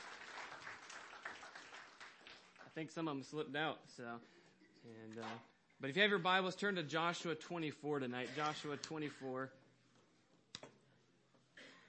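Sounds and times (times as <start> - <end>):
audience applauding for children at a youth night: 0.0 - 2.8
speech: 2.8 - 9.6.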